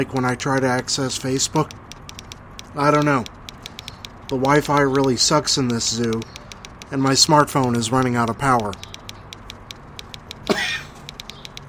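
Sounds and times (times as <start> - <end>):
speech: 0.0 - 1.9, 2.8 - 3.4, 4.3 - 8.9
faint steady ticking pattern: 0.0 - 11.6
single short harsh cough: 10.5 - 11.0.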